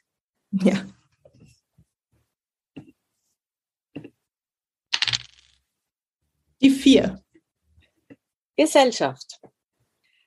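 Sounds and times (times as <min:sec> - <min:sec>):
speech: 0:00.5 - 0:01.0, 0:08.6 - 0:09.5
dice rattling and clattering onto a hard surface: 0:05.0 - 0:05.6.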